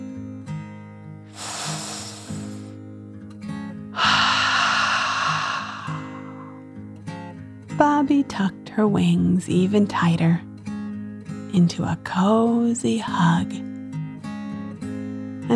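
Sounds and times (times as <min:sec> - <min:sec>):
deep breath in and out: 0:01.3 - 0:02.8, 0:03.9 - 0:06.8
soft steady music: 0:07.1 - 0:15.5
speech: 0:08.0 - 0:10.5, 0:11.6 - 0:13.6.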